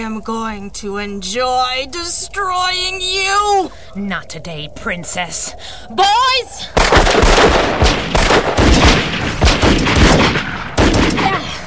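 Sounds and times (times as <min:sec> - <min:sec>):
speech: 0:00.0 - 0:08.8
gunfire from several guns: 0:06.8 - 0:11.6.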